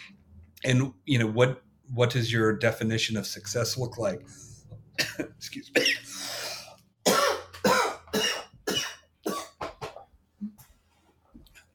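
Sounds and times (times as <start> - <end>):
speech: 0.1 - 4.5, 5.2 - 5.8
sick person coughing: 5.0 - 10.0.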